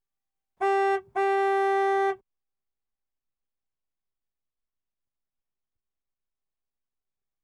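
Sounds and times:
Landrover Safari diesel horn: 0.6s - 2.2s.

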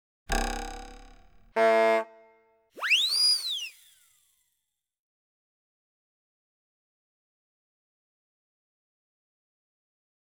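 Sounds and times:
bonk: 0.3s - 2.1s
whiz: 2.8s - 4.3s.

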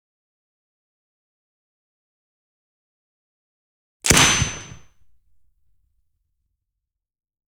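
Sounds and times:
L7A2 GPMG 7.62x51mm belt-fed machine gun firing single tracer shots: 4.1s - 5.0s.

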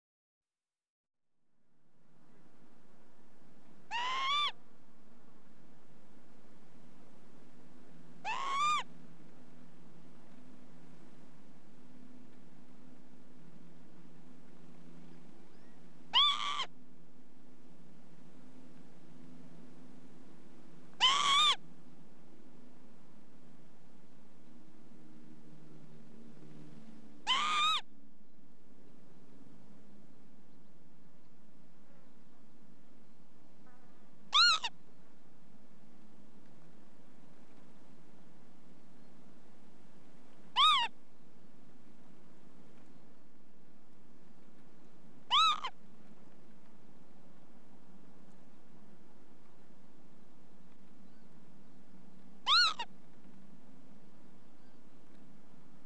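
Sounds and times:
female lapwing ground anxiety call: 3.9s - 4.6s, 7.0s - 24.1s, 27.2s - 27.9s, 34.3s - 34.8s, 40.3s - 41.0s, 45.2s - 45.8s, 52.1s - 53.4s.

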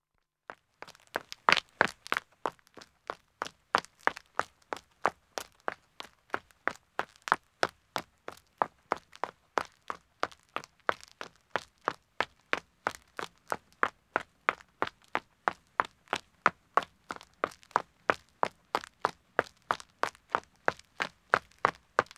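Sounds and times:
man's running footsteps starting on a country road: 0.8s - 22.1s.

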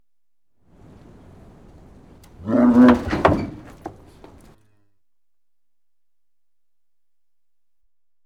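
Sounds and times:
startled cows in a cattle crush: 0.8s - 4.6s.

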